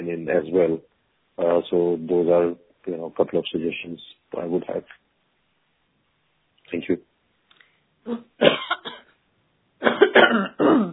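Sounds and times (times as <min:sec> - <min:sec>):
speech: 0:00.1 - 0:05.0, 0:06.7 - 0:07.1, 0:08.0 - 0:09.0, 0:10.1 - 0:10.9
person recovering from a cough coughing: 0:08.1 - 0:09.1, 0:09.8 - 0:10.9.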